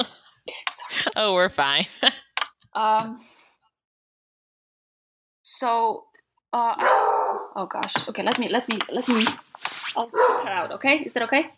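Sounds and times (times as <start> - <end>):
speech: 1.2 - 2.2, 2.8 - 3.3, 5.6 - 9.4, 10.0 - 11.5
dog barking: 6.8 - 7.6, 10.1 - 10.7.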